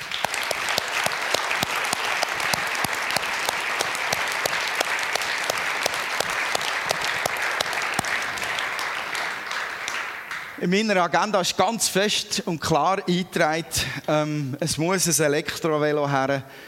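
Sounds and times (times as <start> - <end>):
audience applause: 0.0 - 10.6
speech: 10.6 - 16.6.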